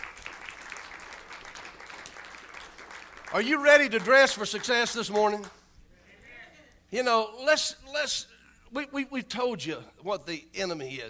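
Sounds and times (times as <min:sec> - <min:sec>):
audience applauding: 0:00.0 - 0:05.5
speech: 0:03.3 - 0:05.6, 0:06.9 - 0:11.0.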